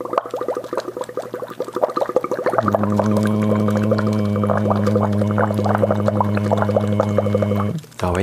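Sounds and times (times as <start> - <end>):
air blown through a straw into a glass of water during a vocal straw exercise: 0.0 - 7.9
sustained hummed voice tone: 2.6 - 8.2.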